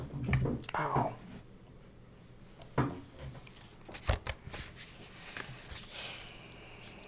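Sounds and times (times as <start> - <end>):
speech: 0.6 - 1.2
deck of cards being shuffled: 3.5 - 7.0.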